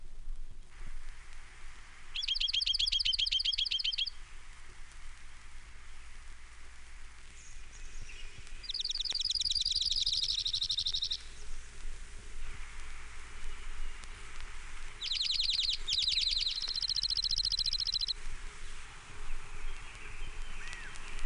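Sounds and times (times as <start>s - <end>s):
steady low hiss: 0.0s - 21.2s
Oregon Junco trilling: 2.1s - 4.2s, 8.6s - 11.3s, 15.0s - 18.2s.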